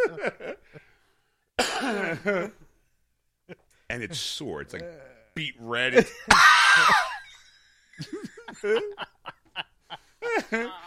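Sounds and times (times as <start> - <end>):
laughter: 0.0 - 0.9, 6.0 - 10.8
speech: 0.2 - 0.4, 2.1 - 2.6, 4.0 - 7.2, 8.0 - 9.2, 10.5 - 10.8
voice imitating a dry cough: 1.6 - 2.4.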